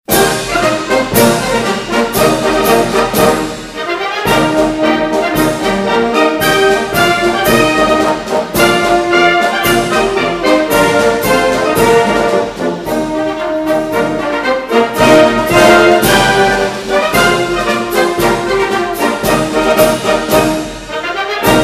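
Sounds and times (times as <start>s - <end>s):
sports meet march music: 0.0s - 21.6s.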